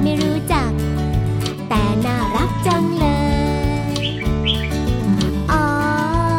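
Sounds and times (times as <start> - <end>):
steady tonal musical backing: 0.0 - 6.3
oriental magpie-robin singing: 3.8 - 5.3.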